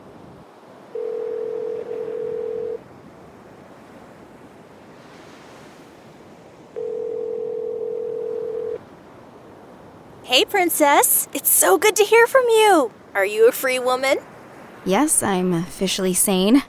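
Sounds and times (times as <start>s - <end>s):
wind and surf noise: 0.0s - 16.6s
phone ringing tones as a call is placed: 0.9s - 2.8s, 6.8s - 8.8s
speech: 10.3s - 16.6s.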